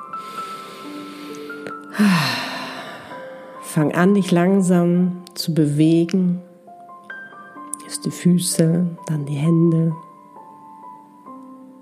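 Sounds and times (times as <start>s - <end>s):
deep inhaled breath during a guided relaxation: 0.1s - 3.6s
speech: 2.0s - 2.4s, 3.8s - 6.5s, 8.0s - 10.1s.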